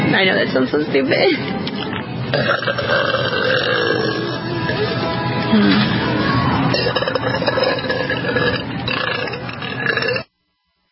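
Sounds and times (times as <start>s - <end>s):
speech: 0.2s - 4.2s, 5.5s - 5.9s
man burping loudly in a long rasping belch: 2.3s - 4.9s, 6.7s - 10.3s.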